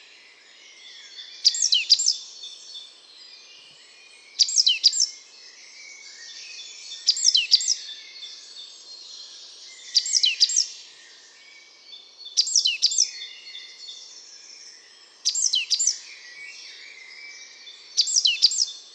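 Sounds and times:
busy chorus of other songbirds: 0:00.0 - 0:18.9
great tit calls: 0:04.3 - 0:05.2, 0:07.0 - 0:07.8, 0:09.9 - 0:10.7, 0:12.3 - 0:13.2, 0:15.2 - 0:16.0, 0:17.9 - 0:18.7.

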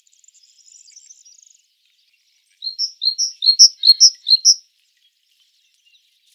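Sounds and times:
great tit Parus major song of quick two-note phrases: 0:02.6 - 0:04.6.

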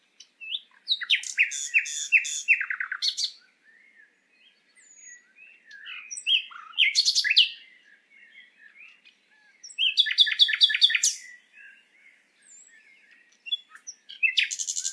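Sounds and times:
common nightingale singing varied phrases: 0:00.0 - 0:14.9.

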